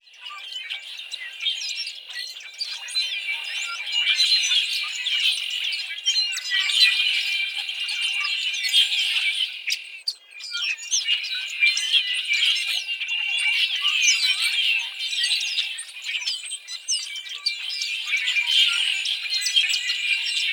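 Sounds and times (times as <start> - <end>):
red-winged blackbirds calling: 0.0 - 20.5.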